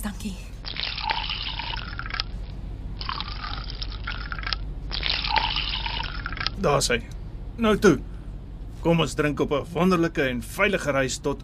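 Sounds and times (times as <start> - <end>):
speech: 0.0 - 0.5, 6.6 - 8.1, 8.8 - 11.4
low rumble: 0.0 - 11.4
white wine being poured into glasses: 0.8 - 2.2, 3.0 - 6.6.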